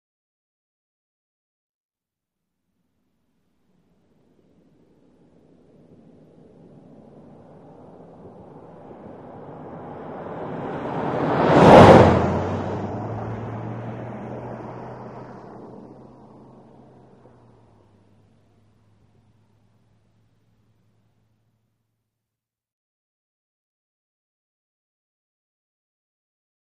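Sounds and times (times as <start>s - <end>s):
small compact car passing by at 25 to 35 mph: 4.4s - 21.1s.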